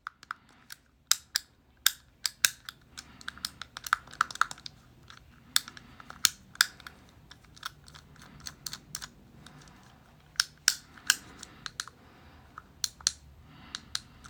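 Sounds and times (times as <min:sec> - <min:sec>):
fidget cube: 0:00.1 - 0:14.2.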